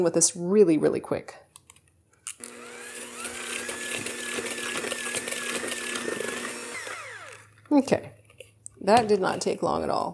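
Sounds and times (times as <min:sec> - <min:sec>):
speech: 0:00.0 - 0:01.5, 0:07.7 - 0:08.2, 0:08.8 - 0:10.1
electric mixer whirring through lemon pudding cake batter: 0:02.3 - 0:07.7.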